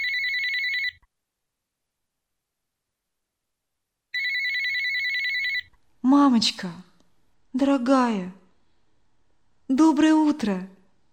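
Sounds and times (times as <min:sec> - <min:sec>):
telephone ringing with electronic trilling: 0:00.0 - 0:01.0, 0:04.1 - 0:05.7
speech: 0:06.2 - 0:06.9, 0:07.6 - 0:08.4, 0:09.7 - 0:10.7.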